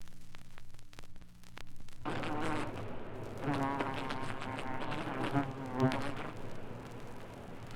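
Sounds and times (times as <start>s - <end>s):
fly buzzing: 2.0s - 7.2s.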